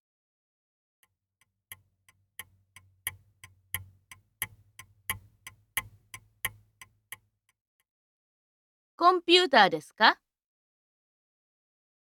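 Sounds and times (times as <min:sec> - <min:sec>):
clock ticking: 0:01.7 - 0:07.3
speech: 0:09.0 - 0:10.2.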